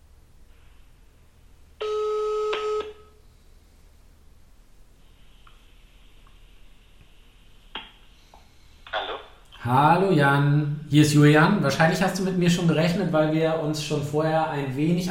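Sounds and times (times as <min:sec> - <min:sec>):
outgoing call ringing tone: 0:01.8 - 0:03.2
speech: 0:09.6 - 0:15.0.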